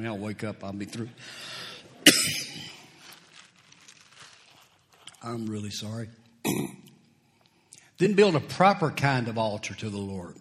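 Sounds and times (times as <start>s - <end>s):
speech: 0.0s - 2.8s, 5.2s - 6.8s, 8.0s - 10.3s
preacher clearing throat during a sermon: 2.0s - 2.9s, 6.4s - 7.0s
preacher coughing during a sermon: 2.0s - 2.9s, 6.4s - 6.9s.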